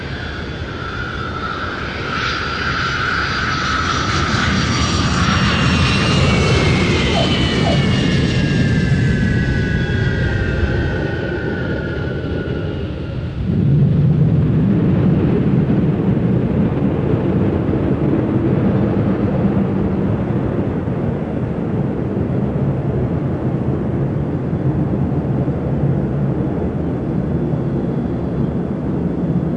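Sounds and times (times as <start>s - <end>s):
passenger airplane engines roaring during landing approach: 0.0s - 29.5s
airplane engine high whining tones: 5.8s - 9.6s.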